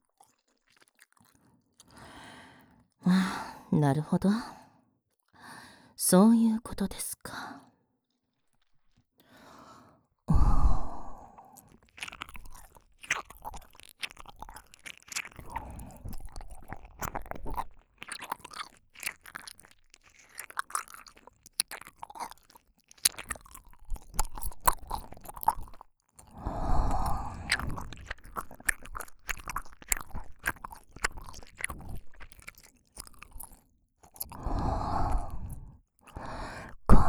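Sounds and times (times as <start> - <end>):
wet chewing: 0.1 - 2.2, 10.9 - 37.0
speech: 3.0 - 4.6, 6.1 - 7.6
crisp crunching bites: 12.0 - 25.8, 27.5 - 34.5.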